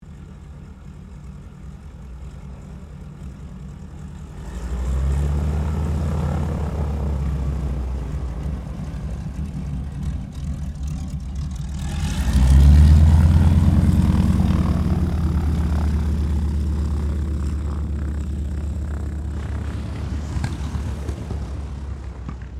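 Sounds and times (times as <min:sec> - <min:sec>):
T-28D Trojan aircraft taxiing: 0:00.0 - 0:22.5.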